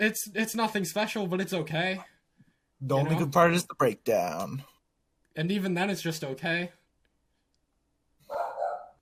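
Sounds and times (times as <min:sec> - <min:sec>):
speech: 0:00.0 - 0:02.2, 0:02.8 - 0:04.7, 0:05.4 - 0:06.8
dog barking: 0:08.3 - 0:09.0.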